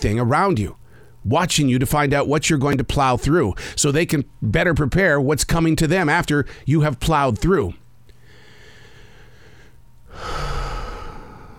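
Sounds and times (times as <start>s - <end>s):
speech: 0.0s - 7.8s
deep inhale outdoors: 0.8s - 1.2s, 3.6s - 3.8s, 8.2s - 11.5s.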